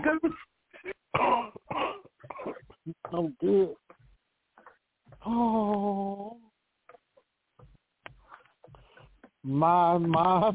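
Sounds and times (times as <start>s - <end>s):
person coughing: 0.0s - 3.1s
speech: 3.2s - 3.8s, 5.3s - 6.2s, 9.4s - 10.5s.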